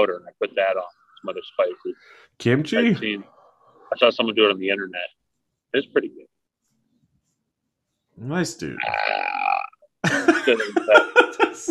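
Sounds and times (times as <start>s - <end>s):
speech: 0.0s - 6.3s, 8.2s - 11.6s
person burping with a gravelly rattling belch: 8.8s - 9.9s
laughter: 10.0s - 11.6s.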